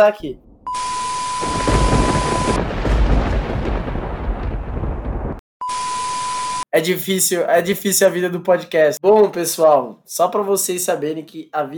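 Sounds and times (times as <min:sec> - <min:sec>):
speech: 0:00.0 - 0:00.5, 0:01.4 - 0:01.7, 0:06.8 - 0:11.7
deep thunder rumbling: 0:00.0 - 0:05.4
heavy rain pouring in a rainstorm: 0:00.4 - 0:05.4.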